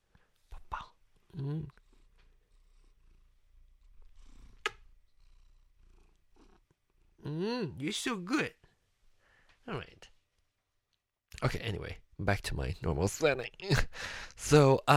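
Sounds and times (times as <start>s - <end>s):
person whispering softly: 0.4s - 1.9s
cat purring: 0.6s - 7.3s
speech: 1.4s - 1.8s, 7.8s - 8.6s, 9.7s - 10.1s, 11.4s - 14.9s.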